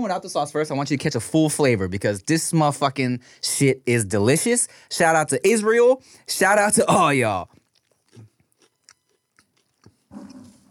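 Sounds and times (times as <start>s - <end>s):
speech: 0.0s - 7.6s
biting and chewing a savory croissant-like bureka pastry: 6.8s - 10.7s.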